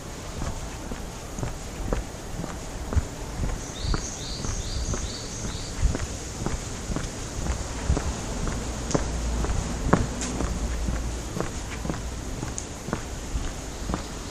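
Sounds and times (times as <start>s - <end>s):
constant hiss: 0.0s - 14.2s
footsteps walking along a narrow alley: 0.0s - 14.2s
bird chirp: 1.4s - 14.2s.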